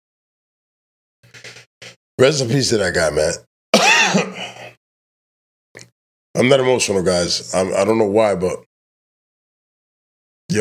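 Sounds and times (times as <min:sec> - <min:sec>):
speech: 0:02.2 - 0:03.5, 0:06.4 - 0:08.7
loud rough throat-clearing cough: 0:03.8 - 0:04.8.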